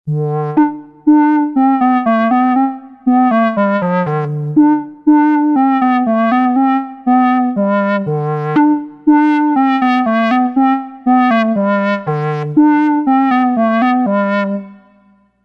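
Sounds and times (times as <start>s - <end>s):
clarinet: 0.1s - 15.4s.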